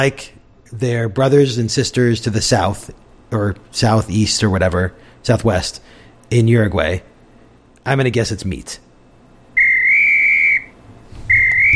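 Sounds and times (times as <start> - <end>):
speech: 0.0 - 7.1, 7.8 - 8.8
loud steady whistle blasts: 9.6 - 11.7.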